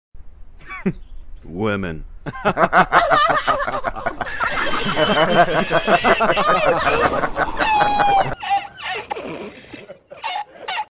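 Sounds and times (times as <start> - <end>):
women laughing in a laugh track: 2.3 - 10.9.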